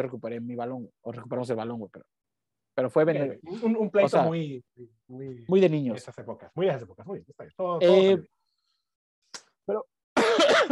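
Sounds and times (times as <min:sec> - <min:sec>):
speech: 0:00.0 - 0:02.2, 0:02.8 - 0:08.4, 0:09.3 - 0:09.9
person coughing close to the microphone: 0:10.2 - 0:10.7.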